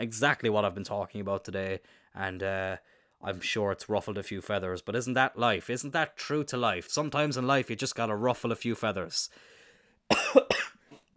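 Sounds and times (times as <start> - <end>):
speech: 0.0 - 9.5
harsh raspy coughs: 10.1 - 11.0.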